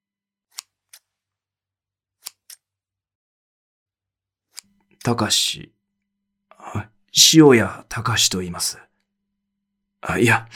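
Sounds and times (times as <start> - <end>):
scissors snipping as a woman cuts: 0.5 - 1.1, 2.2 - 2.7
speech: 5.0 - 5.8, 6.8 - 8.9, 10.0 - 10.5.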